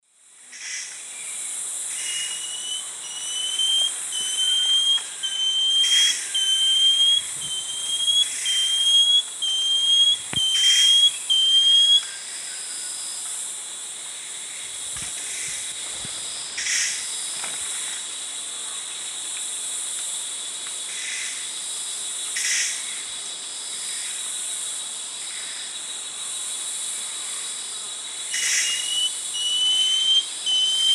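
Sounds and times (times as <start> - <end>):
Dichrozona cincta singing in the Eastern Lowlands of South America: 2.0 - 12.2, 28.4 - 30.9.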